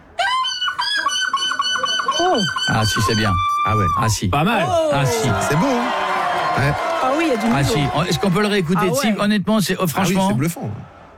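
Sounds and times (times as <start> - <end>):
laughter: 0.0 - 11.1
person imitating a gull cry at a seagull-cry championship in La Panne, Belgium: 0.2 - 5.9
speech: 2.4 - 6.0, 6.6 - 11.0.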